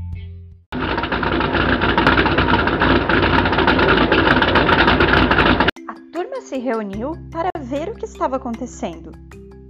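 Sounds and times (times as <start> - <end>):
large truck engine idling: 0.7 - 5.7
speech: 6.6 - 9.4.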